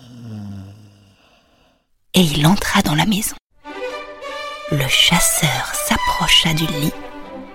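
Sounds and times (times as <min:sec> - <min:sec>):
single deep rumbling snore: 0:00.0 - 0:01.7
speech: 0:02.2 - 0:03.4, 0:04.7 - 0:07.1.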